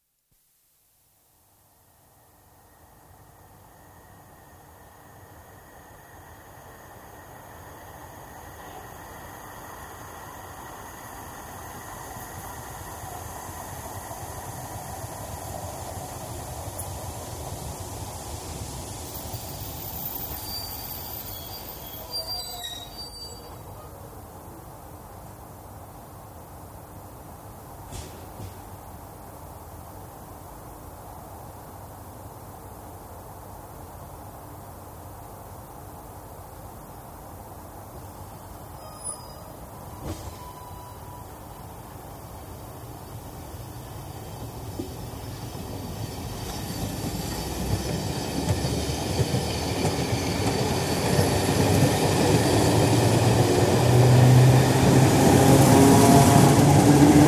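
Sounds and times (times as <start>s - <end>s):
steam train starting, running through cuttings and stopping in a station: 2.6s - 23.9s, 38.2s - 57.2s.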